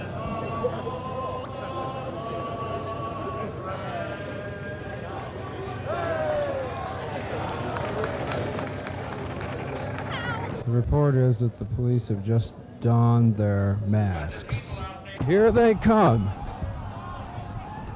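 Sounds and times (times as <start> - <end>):
large crowd singing a familiar tune together: 0.0 - 9.0, 13.9 - 17.9
rumble of crowd noise and movement: 0.0 - 17.9
speech: 10.8 - 16.4.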